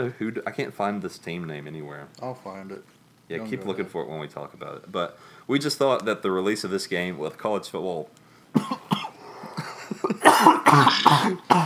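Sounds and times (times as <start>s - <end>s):
speech: 0.0s - 9.0s
heavy coughing fit: 8.5s - 11.6s
laughter: 9.4s - 10.4s.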